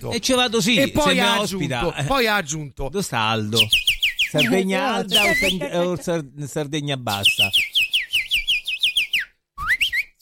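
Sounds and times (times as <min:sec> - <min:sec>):
speech: 0:00.0 - 0:07.7
laughter: 0:00.9 - 0:01.7, 0:04.4 - 0:06.3
person whistling imitation of goldfinch birdsong: 0:03.6 - 0:05.7, 0:07.2 - 0:10.2.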